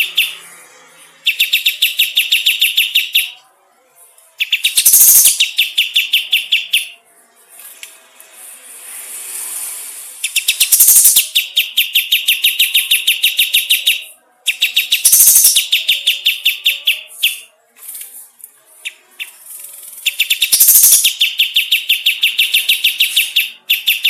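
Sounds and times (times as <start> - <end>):
bulbul chirping: 0.0 - 0.5, 1.2 - 3.4, 4.4 - 7.0, 10.2 - 17.5, 18.8 - 24.0.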